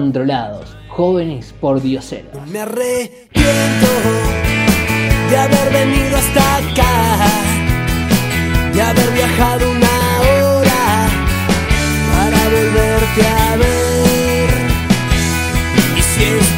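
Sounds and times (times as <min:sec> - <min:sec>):
speech: 0:00.0 - 0:04.4, 0:05.3 - 0:07.5, 0:08.8 - 0:10.0, 0:13.1 - 0:13.8
lead vocal singing: 0:02.4 - 0:07.8, 0:08.4 - 0:16.5
rock band playing with drums, bass, keyboards and guitars: 0:03.3 - 0:16.5.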